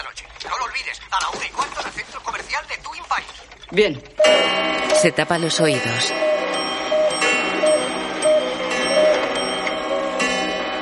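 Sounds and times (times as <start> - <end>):
many clocks ticking: 0.0 - 10.7
speech: 0.8 - 6.2
many clocks chiming and ringing bells striking eight o'clock: 3.7 - 10.7.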